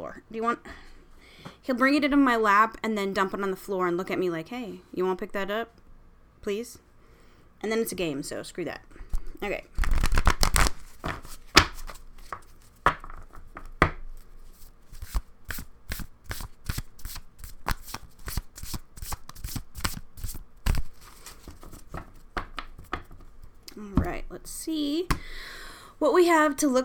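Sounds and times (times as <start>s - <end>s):
speech: 0.0s - 0.9s, 1.6s - 5.8s, 6.4s - 6.8s, 7.6s - 9.8s, 26.0s - 26.8s
deck of inspiration cards shuffled by hand: 9.8s - 12.8s, 14.2s - 23.6s.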